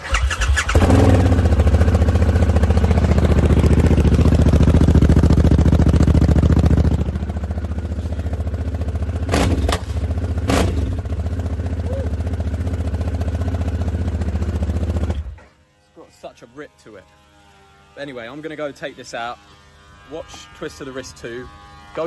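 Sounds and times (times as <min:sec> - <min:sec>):
motorbike engine starting and idling: 0:00.0 - 0:15.4
speech: 0:18.0 - 0:22.0.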